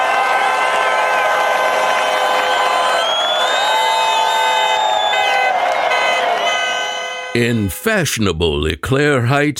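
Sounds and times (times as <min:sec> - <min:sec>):
high shouts and whoops from the crowd: 0:00.0 - 0:06.9
large crowd cheering wildly: 0:00.0 - 0:07.7
speech: 0:07.4 - 0:09.5.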